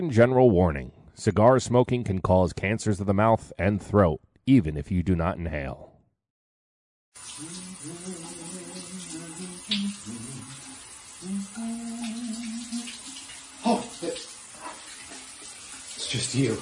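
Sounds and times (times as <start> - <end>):
speech: 0.0 - 5.9, 16.1 - 16.6
water rushing steadily from a shower: 7.2 - 16.6.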